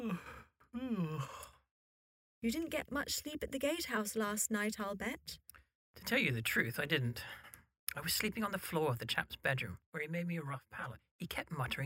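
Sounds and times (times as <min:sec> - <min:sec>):
man yawning: 0:00.0 - 0:01.6
speech: 0:02.4 - 0:05.4, 0:06.0 - 0:11.8.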